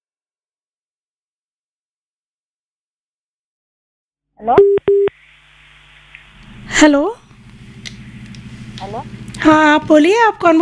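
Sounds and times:
speech: 4.4s - 5.0s, 6.8s - 7.2s, 8.8s - 10.5s
incoming telephone call connecting beeps: 4.6s - 5.1s.

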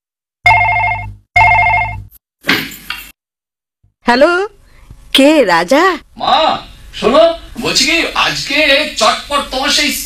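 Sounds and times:
telephone bell ringing: 0.5s - 2.1s
speech: 4.1s - 4.6s, 5.2s - 10.0s.

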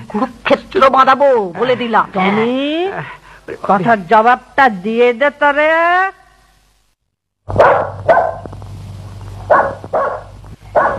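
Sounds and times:
low steady hum: 0.0s - 10.9s
speech: 0.1s - 6.2s, 7.5s - 8.2s
dog barking: 7.5s - 8.5s, 9.5s - 10.9s.

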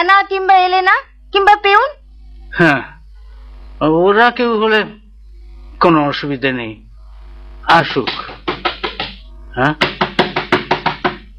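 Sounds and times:
speech: 0.0s - 3.0s, 3.8s - 5.0s, 5.8s - 6.8s, 7.6s - 8.4s, 9.6s - 9.9s
knocking on a door: 8.0s - 11.3s.

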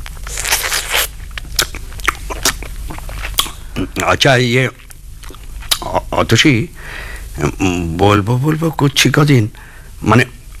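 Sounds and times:
person biting and chewing food: 0.0s - 4.1s, 4.7s - 5.9s
speech: 3.8s - 4.8s, 5.9s - 10.4s.

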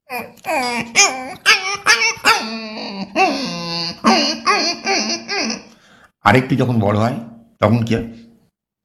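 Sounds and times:
puppy whimpering and yipping: 0.1s - 5.7s
speech: 0.2s - 1.4s, 6.2s - 8.2s.

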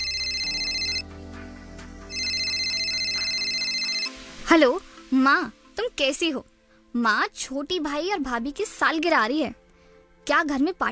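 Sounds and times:
phone ringing on an outgoing call: 0.0s - 1.1s, 2.1s - 4.2s
speech: 4.5s - 9.6s, 10.2s - 10.8s.

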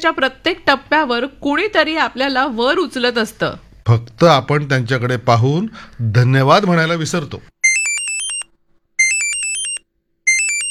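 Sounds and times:
speech: 0.0s - 7.6s
mobile phone ringtone with bright electronic warbling tones: 7.6s - 10.6s.

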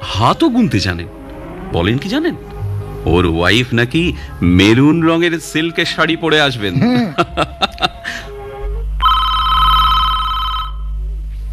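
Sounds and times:
low steady hum: 0.0s - 11.5s
speech: 0.2s - 7.6s
laughter: 6.7s - 8.2s
telephone ringing at a hotel reception desk: 9.0s - 11.0s.

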